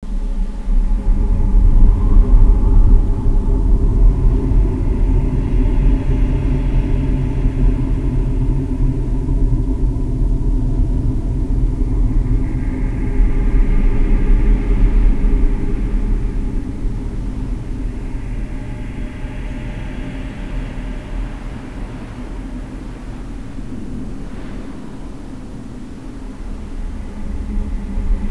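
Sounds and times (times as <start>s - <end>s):
scary ambient sound: 0.4s - 28.2s.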